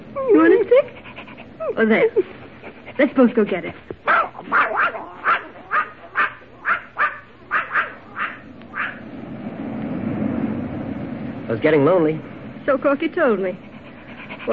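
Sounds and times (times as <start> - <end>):
speech: 0.2 - 1.0, 1.6 - 2.4, 3.0 - 4.8, 11.5 - 13.7
puppy yapping: 4.0 - 9.1
low rushing noise: 7.3 - 14.3.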